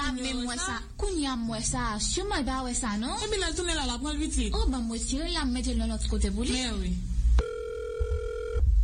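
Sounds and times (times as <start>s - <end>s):
speech: 0.1s - 7.1s
electronic telephone ringing: 7.4s - 8.6s.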